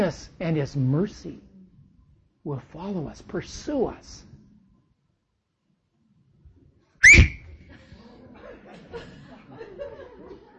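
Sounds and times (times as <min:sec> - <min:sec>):
speech: 0:00.0 - 0:01.5, 0:02.4 - 0:04.3
person whistling: 0:07.0 - 0:07.6
laughter: 0:07.7 - 0:10.5.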